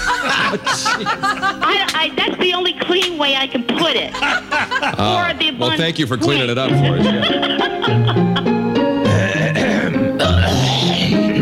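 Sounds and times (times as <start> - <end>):
laughter: 0.0 - 2.7, 3.6 - 11.4
steady tonal background: 0.0 - 11.4
speech: 0.5 - 8.5
man clearing his throat: 9.0 - 11.4.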